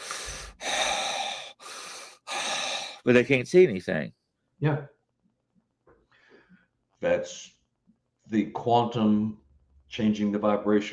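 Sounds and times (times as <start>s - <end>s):
voice imitating raspy heavy breathing: 0.0s - 3.1s
speech: 3.0s - 5.0s, 7.0s - 7.6s, 8.3s - 10.9s.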